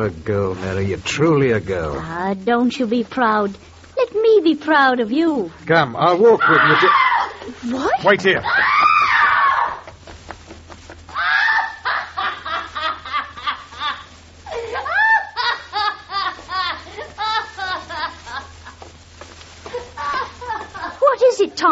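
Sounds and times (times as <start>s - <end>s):
speech: 0.0s - 7.0s, 7.6s - 8.7s
woman screaming: 6.4s - 9.9s, 11.2s - 12.2s, 14.5s - 15.6s
laughter: 11.6s - 18.9s, 19.7s - 21.1s.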